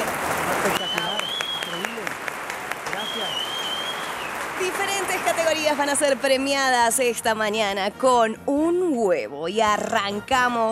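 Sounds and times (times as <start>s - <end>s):
small group clapping: 0.0s - 6.3s
people whooping: 0.6s - 2.1s, 2.9s - 4.4s
long high whistle: 0.7s - 1.9s, 2.9s - 4.3s
speech: 5.7s - 10.7s.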